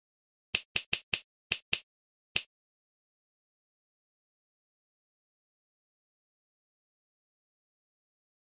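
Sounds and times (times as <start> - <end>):
dry snap: 0.6 - 2.5.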